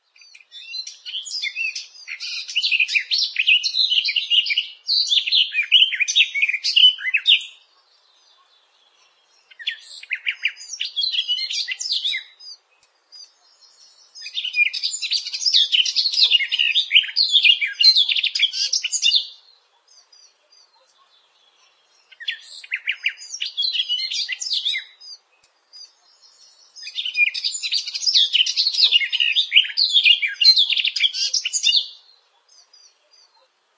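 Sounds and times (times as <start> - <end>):
garden warbler song: 0.0 - 33.7.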